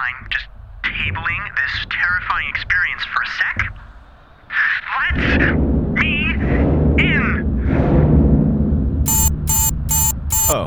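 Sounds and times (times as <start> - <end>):
speech: 0.0 - 3.7, 4.9 - 6.2
steady low rumble: 5.1 - 9.0
timer alarm bright electronic bursts: 9.1 - 10.6.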